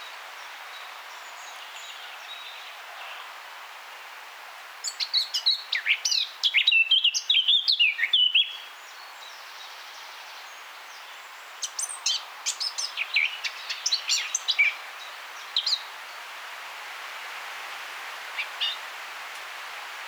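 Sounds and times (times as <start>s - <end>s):
Eurasian blackcap Sylvia atricapilla song: 4.9s - 8.7s, 11.0s - 14.8s, 15.5s - 15.9s, 18.4s - 18.8s.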